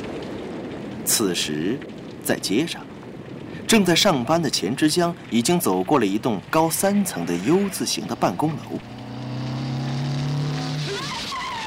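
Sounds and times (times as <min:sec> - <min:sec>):
speech: 0:01.1 - 0:02.9, 0:03.7 - 0:09.0
tires squealing as motorcycle brakes to a stop: 0:07.0 - 0:11.6
three-wheeled motorcycle engine roaring past at speed: 0:07.3 - 0:11.6.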